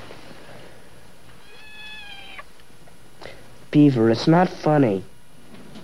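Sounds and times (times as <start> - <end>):
cat meowing by a garage: 1.4 - 2.5
speech: 3.7 - 5.1.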